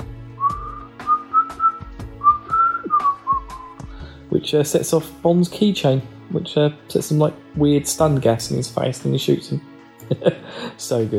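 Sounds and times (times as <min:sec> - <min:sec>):
person whistling a tune: 0:00.4 - 0:03.9
speech: 0:04.5 - 0:11.1.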